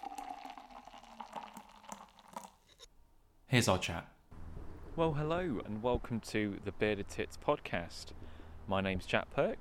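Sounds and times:
beer pouring into a glass: 0:00.0 - 0:02.8
speech: 0:03.5 - 0:04.2, 0:05.0 - 0:09.5.

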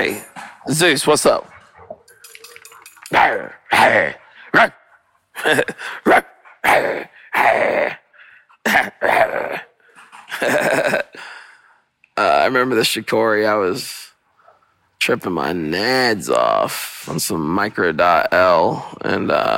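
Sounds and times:
speech: 0:00.0 - 0:01.5, 0:03.1 - 0:04.8, 0:05.4 - 0:08.0, 0:08.6 - 0:09.7, 0:10.3 - 0:11.4, 0:12.2 - 0:14.1, 0:15.0 - 0:19.5
dog barking: 0:03.1 - 0:04.8, 0:06.0 - 0:07.5.

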